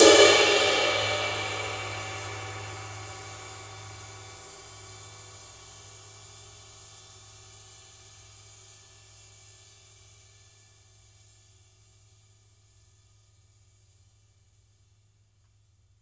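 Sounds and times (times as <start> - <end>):
sizzle cymbal crash: 0.0 - 5.0.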